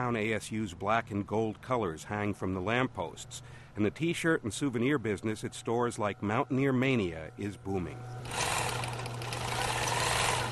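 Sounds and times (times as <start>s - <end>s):
speech: 0.0s - 8.4s
shop sewing machine stitching letters onto a sweatshirt: 8.2s - 10.5s.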